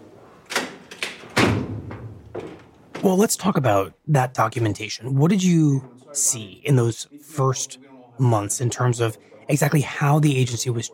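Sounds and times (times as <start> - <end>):
hallway door thudding and banging: 0.6 - 3.0
speech: 3.0 - 10.9.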